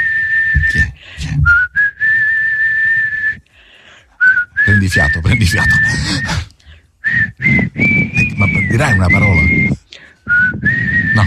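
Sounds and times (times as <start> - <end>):
person whistling a long steady high note: 0.0 - 3.5, 4.2 - 11.2
speech: 4.9 - 6.4.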